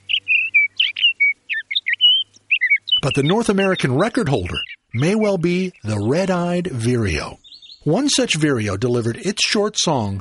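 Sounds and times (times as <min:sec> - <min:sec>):
Sage Thrasher song: 0:00.0 - 0:06.1, 0:07.4 - 0:07.9
speech: 0:03.0 - 0:10.1.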